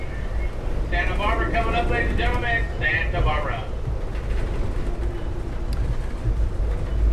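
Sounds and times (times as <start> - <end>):
passenger train rolling along the tracks into a station: 0.0 - 7.1
faint clatter: 3.8 - 7.1.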